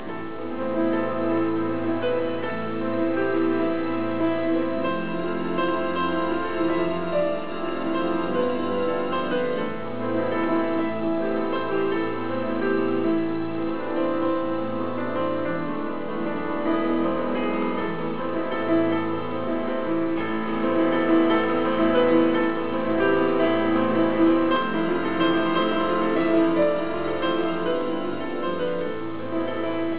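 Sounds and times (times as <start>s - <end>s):
piano concerto: 0.0s - 29.9s.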